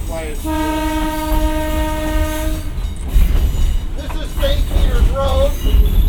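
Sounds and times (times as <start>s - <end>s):
passing train rumble and clatter: 0.0s - 6.0s
speech: 0.1s - 0.9s
train horn at an unprotected road crossing: 0.4s - 2.8s.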